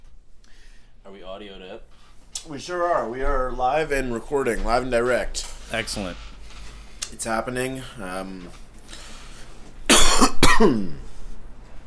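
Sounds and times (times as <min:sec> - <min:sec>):
speech: 0:01.1 - 0:06.3, 0:07.1 - 0:08.6, 0:10.6 - 0:11.1
person coughing close to the microphone: 0:09.9 - 0:11.0.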